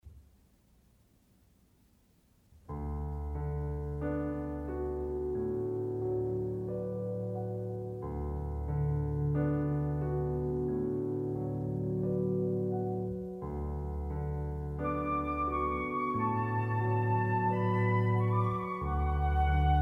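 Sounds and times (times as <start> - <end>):
piano: 2.5 - 19.8
flute: 14.8 - 19.8.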